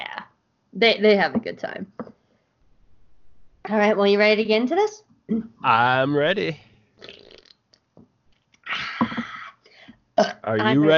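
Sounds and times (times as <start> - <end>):
speech: 0.8 - 2.1, 3.7 - 7.1, 10.4 - 10.9
loud burps with a gurgly low rumble: 6.3 - 7.6.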